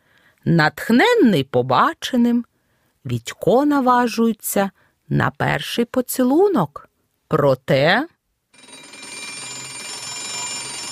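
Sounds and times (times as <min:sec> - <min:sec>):
speech: 0:00.4 - 0:08.8
alarm clock ringing with a metallic jangle: 0:08.6 - 0:10.8.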